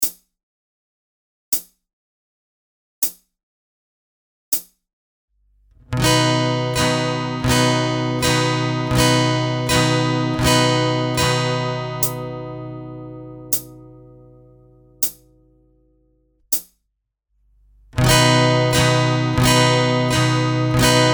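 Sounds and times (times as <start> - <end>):
slow guitar strumming with capo on fourth fret: 5.8 - 15.7, 17.7 - 21.1.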